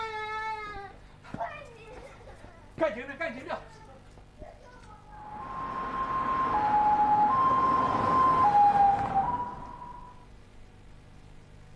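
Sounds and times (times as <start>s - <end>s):
road noise rumble: 4.8s - 10.2s
ambulance siren wailing in a two-tone pattern: 5.2s - 10.2s.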